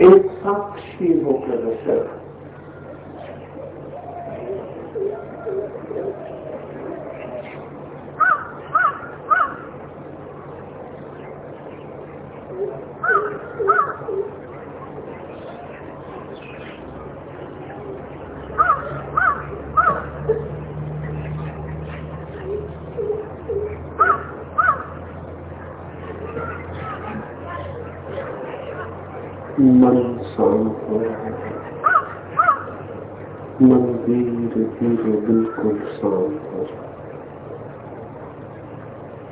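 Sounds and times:
low hum: 0.0 - 39.2
speech: 0.1 - 2.2
crows cawing: 2.5 - 3.4, 8.2 - 9.8, 13.0 - 14.4, 18.5 - 20.4, 23.1 - 25.1, 26.3 - 27.3, 31.4 - 32.9, 35.4 - 35.9.

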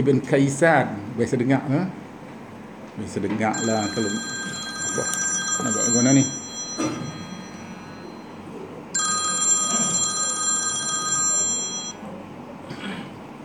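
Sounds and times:
speech: 0.0 - 2.0, 3.0 - 4.4, 5.0 - 7.2
electronic telephone ringing from an incoming international call: 3.5 - 12.0.

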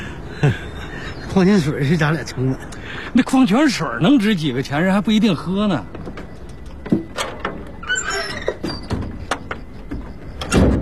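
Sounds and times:
speech: 0.4 - 0.7, 1.4 - 6.0
door closing: 6.0 - 10.7
door squeal: 7.1 - 10.7.

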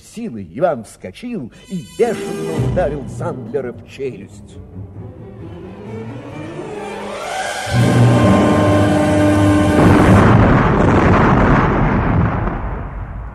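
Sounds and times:
speech: 0.2 - 5.2
thunderous explosion: 7.7 - 13.3.

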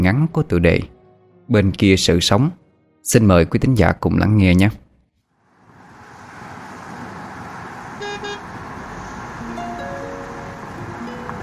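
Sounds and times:
speech: 0.0 - 0.9, 1.5 - 4.8
busy street traffic: 5.3 - 11.4
car horns honking: 7.9 - 11.4.

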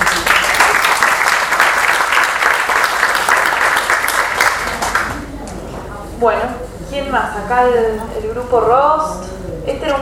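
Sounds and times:
audience applause at a workshop gathering: 0.0 - 5.3
speech: 6.2 - 10.0.

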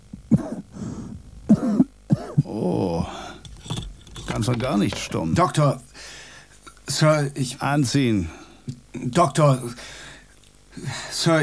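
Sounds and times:
quieter breathy sound between coughs: 0.7 - 1.2, 5.9 - 6.6, 8.3 - 8.7, 9.8 - 11.2
patient coughing during a doctor's examination: 1.5 - 2.5
speech: 2.6 - 2.9, 4.4 - 6.2, 6.9 - 10.0, 10.8 - 11.4.

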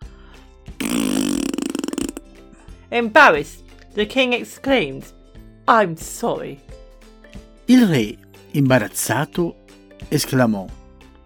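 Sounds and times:
horse farting: 0.8 - 2.3
speech: 2.9 - 6.8, 7.7 - 10.8.

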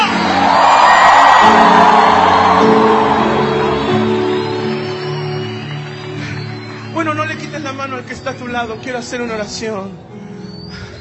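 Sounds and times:
church congregation crowd shouting a victory cry in Argentina: 0.0 - 6.7
speech: 8.6 - 10.1.

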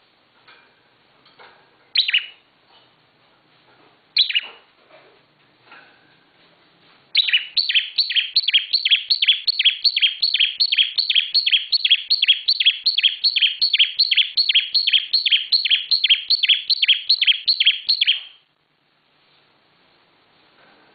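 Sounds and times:
bar-winged prinia chirps: 1.9 - 2.4, 4.2 - 4.6, 7.2 - 18.5
bar-winged prinia calling high downslurred notes: 2.0 - 2.4, 4.2 - 4.6, 7.2 - 18.4.

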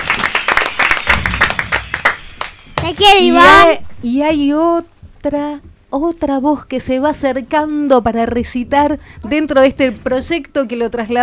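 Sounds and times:
audience applause after a poetry recitation: 0.0 - 2.8
speech: 2.9 - 11.2.

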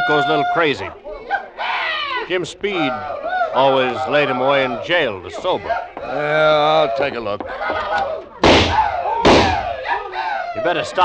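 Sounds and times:
speech: 0.1 - 1.0, 2.3 - 8.2, 10.6 - 11.0
gunshots fired by a drunk old trapper: 8.4 - 9.8.

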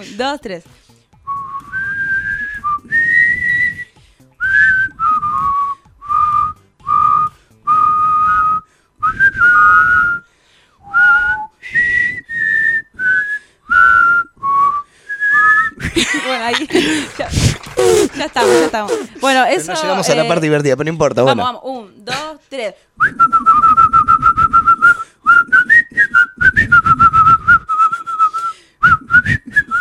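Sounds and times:
speech: 0.0 - 0.8, 18.2 - 24.0
people whistling a national anthem: 1.2 - 16.1, 23.0 - 29.7
laughter: 15.7 - 20.5.

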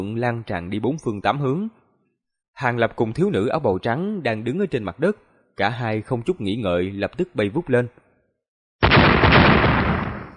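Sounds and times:
speech: 0.0 - 1.8, 2.6 - 8.0
large explosion: 8.8 - 10.3.

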